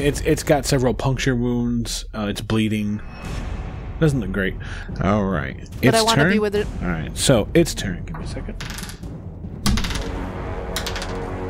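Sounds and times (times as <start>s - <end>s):
speech: 0.0s - 8.8s
handful of dice clattering across a hard surface: 8.6s - 9.0s, 9.7s - 10.1s, 10.8s - 11.3s.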